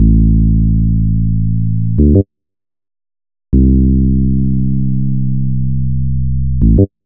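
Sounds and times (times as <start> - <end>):
136 BPM bass loop in C and A: 0.0 - 2.2, 3.6 - 7.0.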